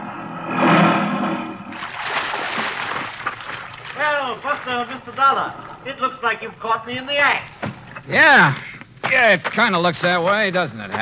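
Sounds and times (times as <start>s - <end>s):
small boat pulling up through the water beside a rocky ledge: 1.7s - 6.5s
water sloshing and splashing against the boat hull: 1.8s - 6.0s
speech: 4.3s - 11.0s.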